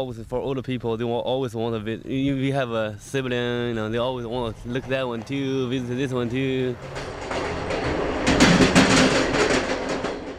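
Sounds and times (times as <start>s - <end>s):
speech: 0.0s - 7.2s
slow passenger train clattering on rails: 3.7s - 10.3s.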